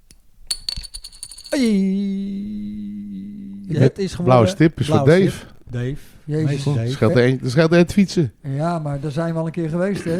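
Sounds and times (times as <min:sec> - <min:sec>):
small plastic coin clicking and rattling as tossed: 0:00.0 - 0:01.8
speech: 0:01.5 - 0:02.5, 0:03.7 - 0:10.1.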